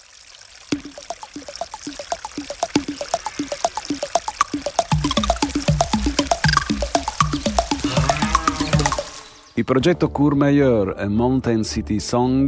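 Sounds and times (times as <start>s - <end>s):
mountain streams in Courmayeur gurgling over rocks: 0.0s - 9.5s
splashy water pops: 0.6s - 9.4s
speech: 9.6s - 12.4s.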